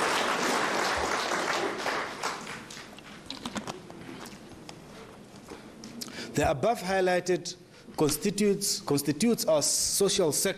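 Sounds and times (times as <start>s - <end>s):
audience applause: 0.0s - 3.0s
speech: 6.4s - 10.5s.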